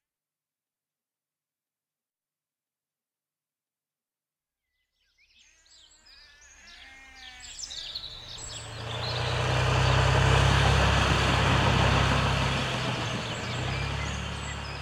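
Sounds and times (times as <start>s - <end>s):
tractor engine droning while mowing a meadow: 8.1s - 14.7s.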